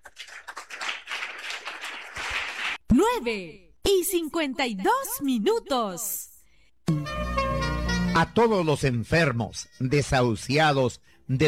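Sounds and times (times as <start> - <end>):
crowd applauding: 0.0 - 2.8
speech: 3.0 - 6.2, 6.9 - 7.1, 8.2 - 11.4.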